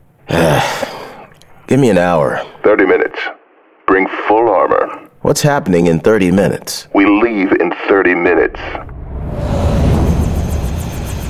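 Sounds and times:
speech: 0:01.7 - 0:03.4, 0:04.0 - 0:09.5
helicopter rotor blades swishing: 0:08.9 - 0:11.2
helicopter powering up at an army airfield: 0:09.4 - 0:11.2.

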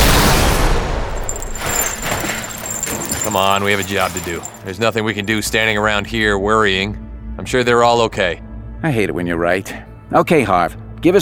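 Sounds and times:
gunfire from a gun aimed at a guard robot: 0:00.0 - 0:01.3
speech: 0:03.4 - 0:11.1.

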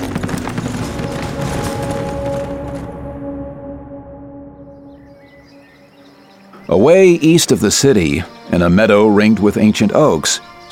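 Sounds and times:
horse hooves as a rider rides off: 0:00.0 - 0:03.1
sustained tone: 0:01.6 - 0:06.3
speech: 0:06.7 - 0:10.7.

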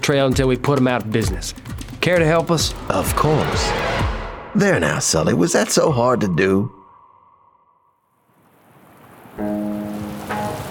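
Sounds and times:
speech: 0:00.0 - 0:06.8
steady tone: 0:02.2 - 0:08.1
loud sustained harmonic drone: 0:02.5 - 0:08.0
evening rain: 0:08.2 - 0:10.7.

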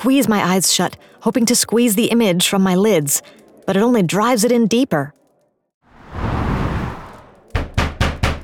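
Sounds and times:
speech: 0:00.0 - 0:05.2
soft rushing swell: 0:05.9 - 0:07.5
loud sharp knocks on a door: 0:07.6 - 0:08.4.

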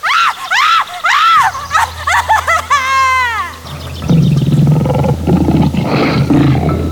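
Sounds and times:
laughter: 0:00.0 - 0:06.9
low hum: 0:00.0 - 0:06.9
lion rough rumbling growl: 0:01.5 - 0:06.9
lion roaring: 0:03.5 - 0:06.9.

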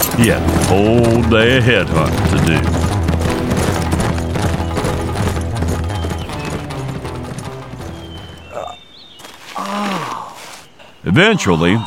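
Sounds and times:
horse hooves clip-clopping: 0:00.0 - 0:08.7
speech: 0:00.2 - 0:02.8, 0:11.2 - 0:11.8.

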